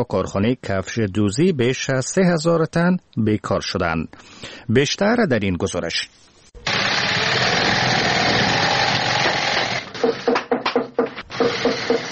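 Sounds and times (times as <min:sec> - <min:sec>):
speech: 0:00.0 - 0:06.3
shoe-sewing machine motor whirring in a shoe factory in Kabul, Afghanistan: 0:06.6 - 0:10.3, 0:11.3 - 0:12.1
workers hammering in a shoe factory in Kabul, Afghanistan: 0:09.2 - 0:12.1.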